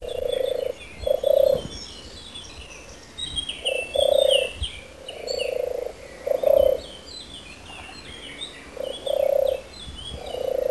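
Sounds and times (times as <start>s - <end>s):
European turtle dove giving low rolling purrs: 0.0s - 1.7s, 3.6s - 6.9s, 8.7s - 10.6s
thin chirping from other birds: 0.0s - 10.6s.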